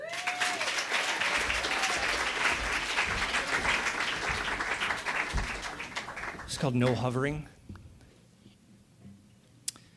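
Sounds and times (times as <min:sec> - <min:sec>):
dense applause from a sizable theatre audience welcoming a comedian: 0:00.0 - 0:07.4
speech: 0:06.6 - 0:07.6.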